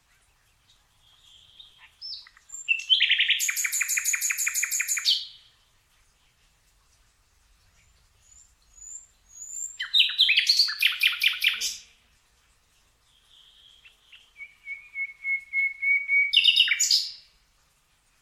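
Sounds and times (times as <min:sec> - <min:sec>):
common nightingale singing: 0:00.0 - 0:05.6, 0:07.7 - 0:12.0, 0:12.9 - 0:17.3.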